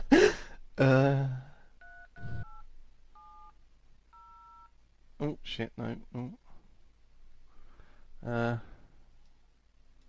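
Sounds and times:
speech: 0.8s - 1.4s, 5.2s - 6.4s, 8.2s - 8.7s
electronic phone keypad dialing beeps: 1.8s - 2.6s, 3.2s - 3.5s, 4.2s - 4.7s.

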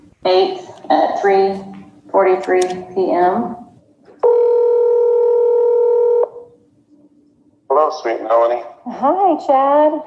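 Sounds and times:
speech: 0.2s - 3.6s, 7.8s - 10.0s
phone ringback tone over a phone line: 4.2s - 6.5s.

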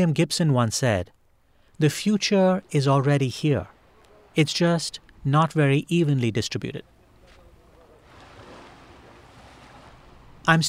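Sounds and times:
speech: 0.0s - 1.2s, 1.8s - 3.8s, 4.4s - 6.9s, 10.4s - 10.6s
shallow ocean water lapping at the shoreline: 1.4s - 5.7s, 6.8s - 10.6s.

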